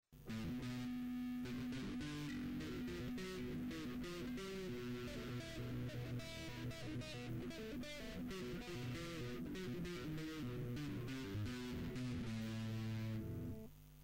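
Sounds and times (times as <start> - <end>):
guitar playing an A major scale: 0.2 - 13.7.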